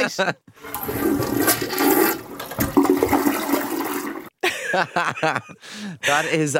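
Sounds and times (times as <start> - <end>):
speech: 0.0 - 2.0, 4.7 - 6.5
toilet flushing: 0.6 - 4.3
laughter: 4.4 - 6.5.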